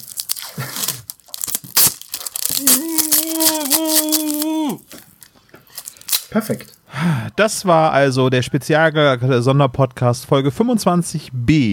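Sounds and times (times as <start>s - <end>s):
adhesive tape ripped off a roll: 0.0s - 6.8s
speech: 6.3s - 11.7s.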